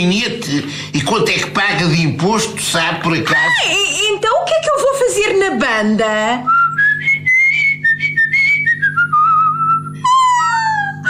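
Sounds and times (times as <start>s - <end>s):
speech: 0.0s - 7.1s
person whistling a lively melody: 6.5s - 11.0s.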